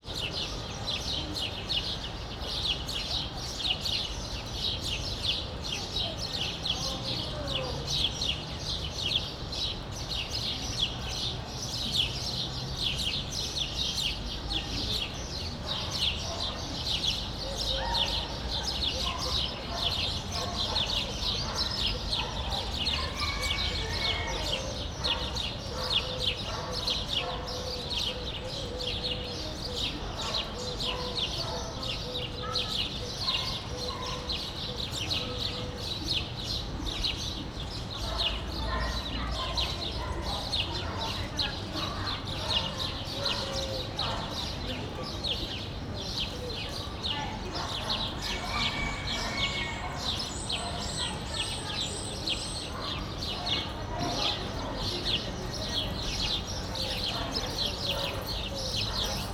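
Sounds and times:
house sparrow chirping in Debrecen zoo: 0:00.2 - 0:59.3
rooster crowing in Debrecen zoo: 0:48.6 - 0:49.8.

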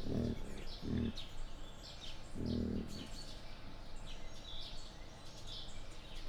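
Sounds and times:
captive wild boar grunting at a zoo in Jászberény: 0:00.0 - 0:01.3, 0:02.3 - 0:03.2.

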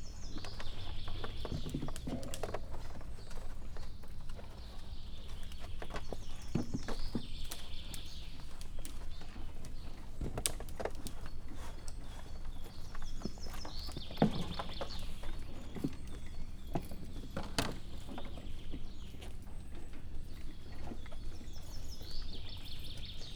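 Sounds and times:
Père David's deer leg joints clicking in a zoo: 0:00.0 - 0:23.1.

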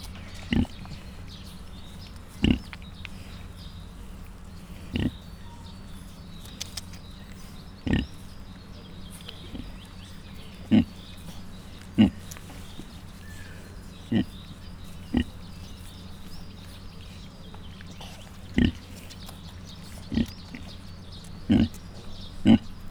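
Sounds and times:
suckling Mangalica piglets giving short husky grunts: 0:00.0 - 0:01.7, 0:02.3 - 0:03.5, 0:04.5 - 0:05.5, 0:07.7 - 0:08.3, 0:09.1 - 0:15.9, 0:17.7 - 0:22.8
quiet continuous hum: 0:00.0 - 0:22.8.

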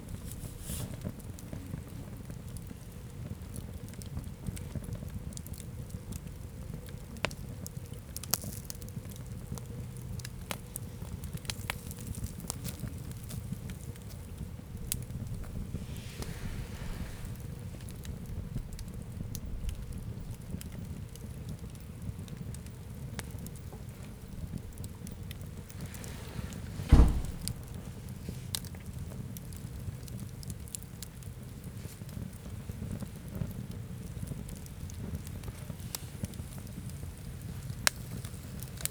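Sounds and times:
campfire embers crackling: 0:00.0 - 0:38.8.

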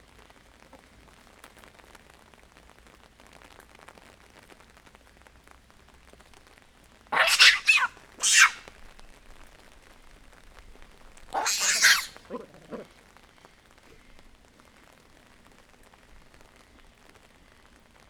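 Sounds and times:
collared baboons communicating with each other in a zoo: 0:07.2 - 0:08.7, 0:11.4 - 0:12.9.

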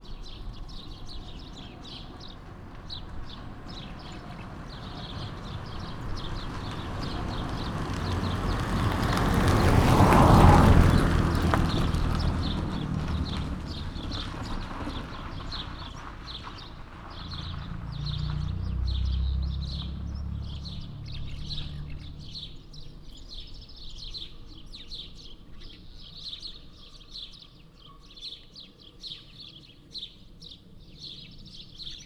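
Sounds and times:
sparrows chirping loudly on a street: 0:00.0 - 0:32.0
passenger car passing from right to left in Szőlősardó: 0:00.2 - 0:23.4.

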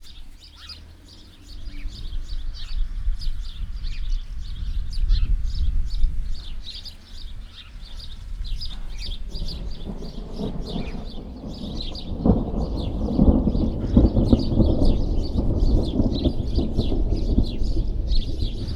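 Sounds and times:
wind: 0:00.0 - 0:18.7
thunder: 0:08.1 - 0:18.7.

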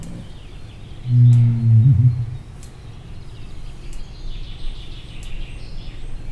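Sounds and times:
distant rhea calling at Pecs zoo: 0:00.0 - 0:02.9.

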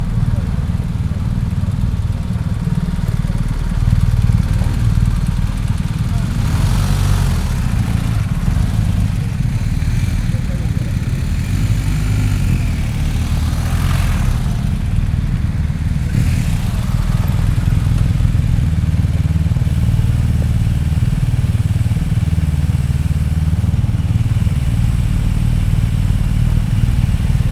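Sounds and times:
Honda motorcycles in a ruined town: 0:00.0 - 0:27.4.

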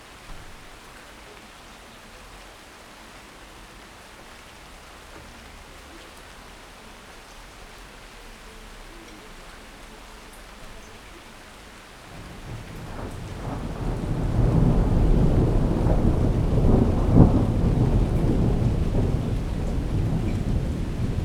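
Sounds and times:
thunder heard from a lodging balcony in Skala Potamia Thassos: 0:12.1 - 0:21.2.

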